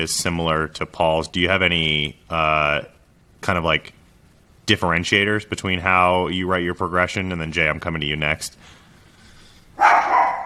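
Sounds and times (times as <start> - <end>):
speech: 0.0 - 4.0, 4.7 - 8.8
dog barking excitedly: 9.8 - 10.4.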